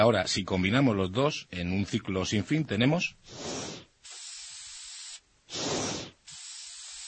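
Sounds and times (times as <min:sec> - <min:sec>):
speech: 0:00.0 - 0:03.8
aerosol spray hissing: 0:03.3 - 0:07.0.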